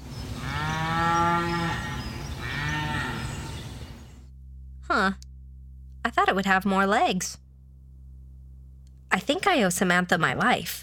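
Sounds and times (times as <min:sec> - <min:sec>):
cow mooing: 0:00.4 - 0:03.8
speech: 0:05.0 - 0:05.3, 0:06.0 - 0:07.4, 0:09.2 - 0:10.8.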